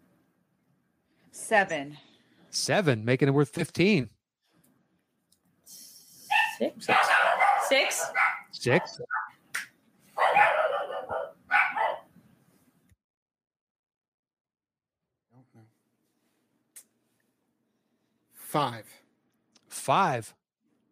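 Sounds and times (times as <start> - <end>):
speech: 1.4 - 4.2, 6.6 - 9.2, 18.5 - 19.0, 19.9 - 20.4
dogs barking: 6.3 - 9.4, 10.1 - 12.1.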